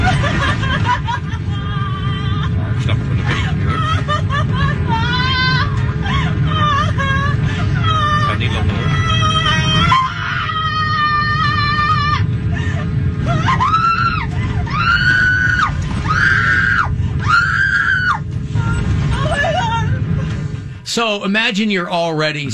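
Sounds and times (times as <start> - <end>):
laughter: 0.0 - 8.6
low airplane cabin rumble: 0.0 - 22.5
woman screaming in panic on an airplane: 1.4 - 2.6, 4.0 - 12.3, 13.3 - 20.0
speech: 21.0 - 22.5.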